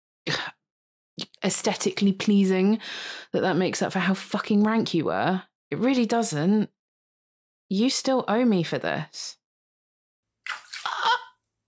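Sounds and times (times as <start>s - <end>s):
speech: 1.4s - 6.8s, 7.7s - 9.4s
water splashed onto a person: 10.5s - 11.3s.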